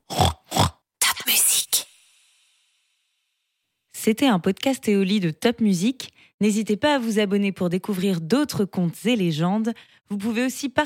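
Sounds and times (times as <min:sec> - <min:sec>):
pig grunting and oinking: 0:00.0 - 0:00.8
speech: 0:04.0 - 0:10.8.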